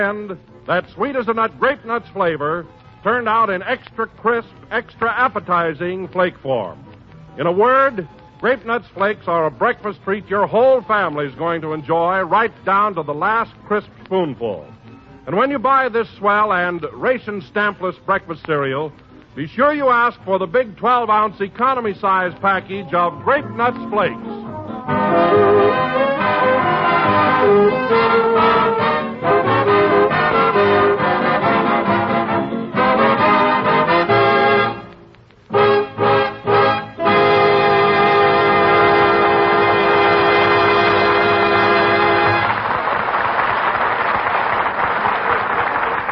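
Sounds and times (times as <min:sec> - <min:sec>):
speech: 0:00.0 - 0:25.1, 0:27.4 - 0:28.8
orchestra playing a lively rhythmic tune: 0:23.3 - 0:34.9, 0:35.5 - 0:42.6
audience applause: 0:42.3 - 0:46.1.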